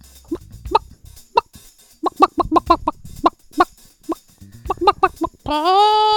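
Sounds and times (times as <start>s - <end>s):
human voice imitating a hen clucking and squawking: 2.1s - 3.0s, 4.7s - 6.1s.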